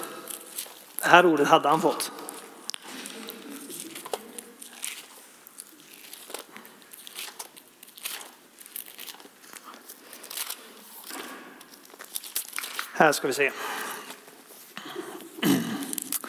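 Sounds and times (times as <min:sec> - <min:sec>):
thin Bible pages rustling as someone leafs through: 0:00.0 - 0:01.0, 0:02.2 - 0:13.0
speech: 0:01.1 - 0:02.2, 0:13.0 - 0:13.8.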